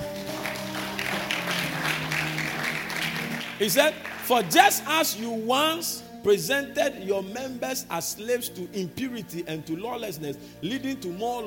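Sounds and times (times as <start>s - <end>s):
audience clapping: 0.0s - 4.9s
speech: 3.6s - 11.4s.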